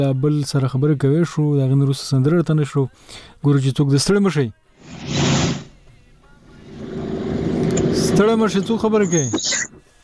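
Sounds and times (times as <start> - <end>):
speech: 0.0 - 5.2, 8.2 - 9.8
motorcycle engine roaring: 6.3 - 8.6.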